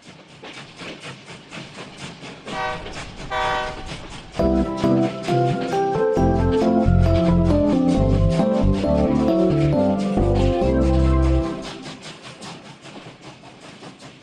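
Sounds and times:
train rumbling past with rhythmic clatter: 0:00.0 - 0:14.2
train horn blasts: 0:02.5 - 0:04.0.

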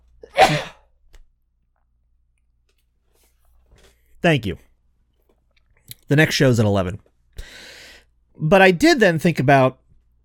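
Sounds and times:
sneeze: 0:00.2 - 0:00.9
speech: 0:04.2 - 0:04.7, 0:06.1 - 0:07.1, 0:08.4 - 0:09.8.

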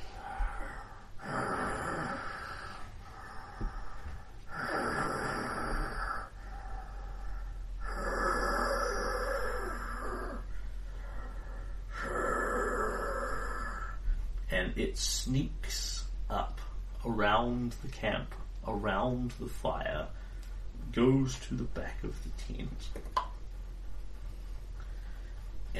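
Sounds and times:
heavy rasping breaths of a large cat-like predator: 0:00.0 - 0:14.2
low constant rumble: 0:00.0 - 0:25.7
speech: 0:14.7 - 0:16.4, 0:17.1 - 0:20.2, 0:21.0 - 0:23.2.

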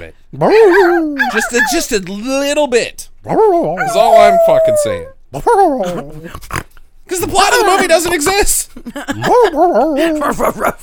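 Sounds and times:
speech: 0:00.0 - 0:10.8
dog whining in a high wavering tone: 0:00.6 - 0:01.8, 0:03.3 - 0:06.3
dog yipping: 0:00.6 - 0:01.9, 0:03.8 - 0:05.1
laughter: 0:07.5 - 0:10.8.

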